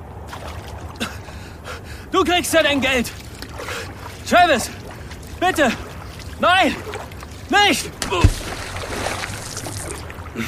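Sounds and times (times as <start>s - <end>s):
speech: 2.1s - 3.2s, 4.3s - 4.8s, 5.4s - 5.8s, 6.4s - 8.6s
man dunked and thrashing in a barrel of stinking water: 3.1s - 10.4s.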